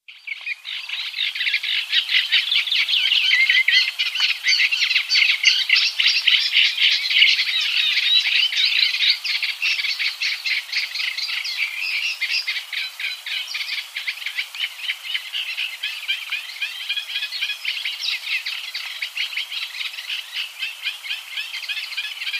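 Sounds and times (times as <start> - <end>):
Acrocephalus scirpaceus: 0.0 - 22.3.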